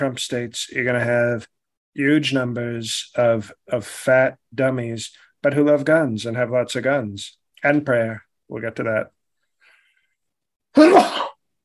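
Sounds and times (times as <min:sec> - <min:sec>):
speech: 0:00.0 - 0:09.2, 0:10.8 - 0:11.2
loud strong human sneeze: 0:10.8 - 0:11.4.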